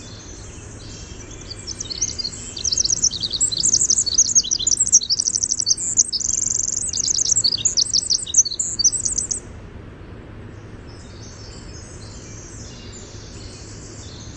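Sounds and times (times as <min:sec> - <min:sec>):
winter wren singing: 0:00.0 - 0:09.5, 0:10.5 - 0:14.3
low background hum: 0:00.0 - 0:14.3.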